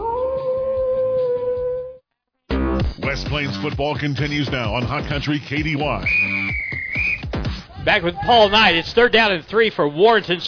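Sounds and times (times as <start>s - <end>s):
coyote howling: 0.0s - 2.0s
speech: 3.1s - 7.2s, 7.8s - 10.4s.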